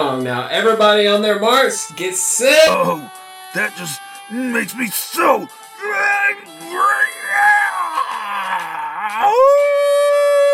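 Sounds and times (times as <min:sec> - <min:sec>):
speech: 0:00.0 - 0:07.6, 0:09.1 - 0:09.8
rough growling wail climbing into a long howl: 0:06.7 - 0:10.4.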